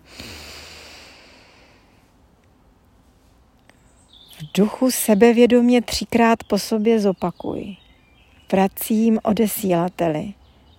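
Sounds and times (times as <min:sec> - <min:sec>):
deep inhale: 0:00.0 - 0:02.2
speech: 0:04.4 - 0:07.8, 0:08.5 - 0:10.4.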